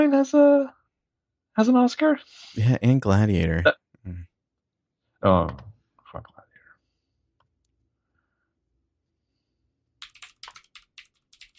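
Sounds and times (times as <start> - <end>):
speech: 0.0 - 0.8, 1.6 - 4.3, 5.2 - 6.4
typing on a clacky computer keyboard: 10.0 - 11.5.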